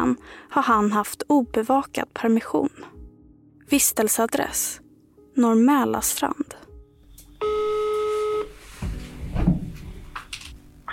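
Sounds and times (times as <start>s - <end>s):
speech: 0.1s - 3.0s, 3.7s - 4.8s, 5.4s - 6.6s
steady electronic telephone ringback tone: 7.4s - 8.6s.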